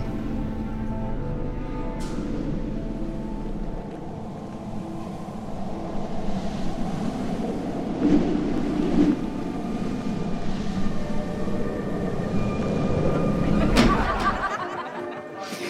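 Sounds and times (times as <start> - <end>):
faint tonal hum: 0.0 - 15.6
autumn wind rushing through an open window into a university corridor: 2.2 - 14.0
laughter: 13.4 - 15.6.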